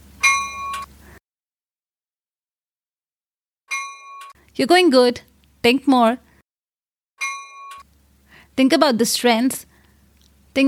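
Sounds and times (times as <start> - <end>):
bell chimes counting down: 0.2 - 0.9, 7.2 - 7.8
speech: 4.6 - 6.2, 8.6 - 9.7.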